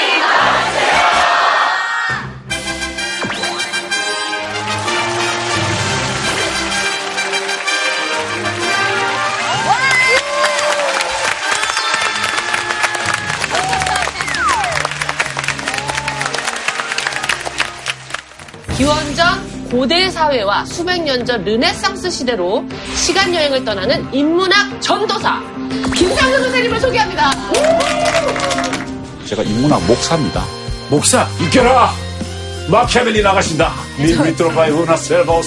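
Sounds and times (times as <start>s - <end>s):
large crowd shouting in unison: 0.0s - 2.3s
bright loud music: 2.2s - 10.6s, 11.3s - 20.4s, 22.7s - 35.4s
audience cheering and whooping: 9.2s - 18.0s, 27.4s - 29.0s
speech: 19.8s - 28.5s, 29.3s - 32.0s, 32.7s - 35.4s.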